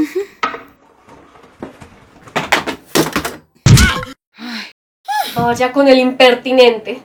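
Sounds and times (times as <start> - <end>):
rapid wooden knocks and clatters of a person tumbling among chairs: 1.0 - 3.4
speech: 5.4 - 7.0.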